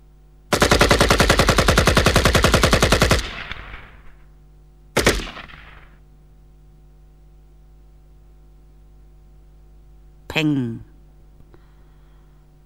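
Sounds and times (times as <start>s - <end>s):
automatic gunfire emptying a magazine: 0.5s - 4.3s, 5.0s - 6.0s
speech: 10.3s - 10.9s.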